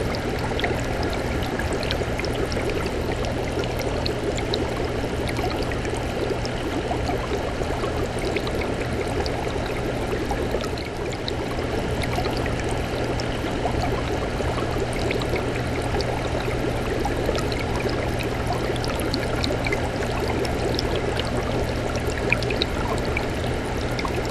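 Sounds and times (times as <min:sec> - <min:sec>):
aquarium: 0:00.0 - 0:24.2.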